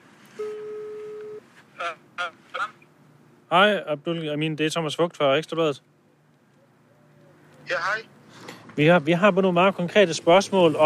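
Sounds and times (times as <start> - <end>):
outgoing telephone call ringback tone: 0.4 - 1.4
speech: 1.8 - 2.6, 3.5 - 5.9, 7.7 - 8.2, 8.8 - 10.8.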